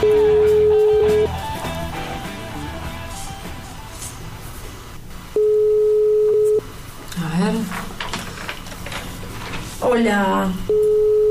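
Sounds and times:
international telephone ringing tone on a call: 0:00.0 - 0:01.4, 0:05.4 - 0:06.6, 0:10.7 - 0:11.2
people talking: 0:07.1 - 0:07.8, 0:09.8 - 0:10.7.

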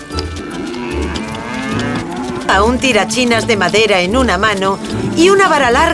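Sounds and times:
cattle mooing: 0:00.0 - 0:05.9
steady noisy background: 0:00.0 - 0:05.9
speech: 0:02.5 - 0:05.9.

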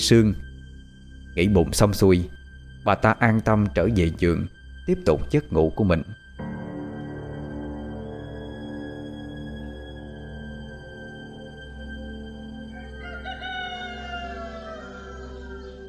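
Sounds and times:
speech: 0:00.0 - 0:00.4, 0:01.4 - 0:06.2
roosters crowing before dawn in a village: 0:12.7 - 0:15.8.

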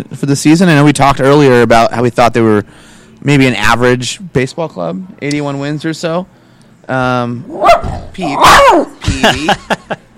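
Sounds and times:
speech: 0:00.0 - 0:10.0
protective dog barking and yipping: 0:07.5 - 0:09.0
laughter: 0:09.0 - 0:10.1.

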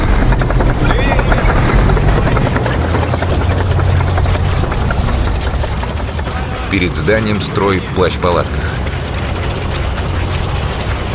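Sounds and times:
heavy tank engine rumble on a road between houses at night: 0:00.0 - 0:11.1
speech: 0:06.7 - 0:08.7.

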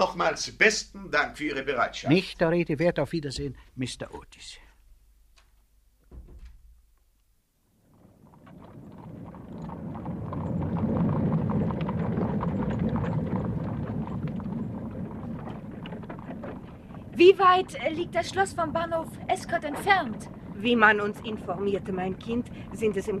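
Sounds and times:
speech: 0:00.0 - 0:04.6, 0:17.2 - 0:23.1
knock: 0:06.1 - 0:06.8
horse-drawn carriage departing: 0:07.9 - 0:23.1.

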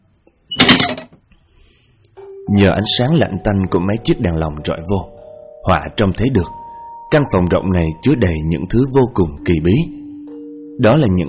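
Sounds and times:
door held by a latch bolt pushed open: 0:00.5 - 0:01.1
speech: 0:02.5 - 0:10.0, 0:10.8 - 0:11.2.

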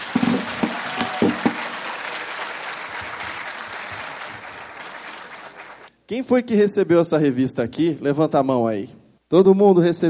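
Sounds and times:
audience applause at a national spiritist convention: 0:00.0 - 0:05.9
speech: 0:06.1 - 0:10.0.

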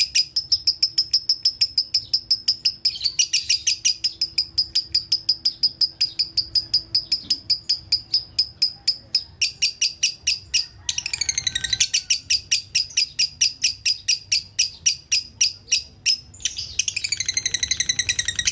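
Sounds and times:
lovebird singing with shrill chirping: 0:00.0 - 0:18.5.

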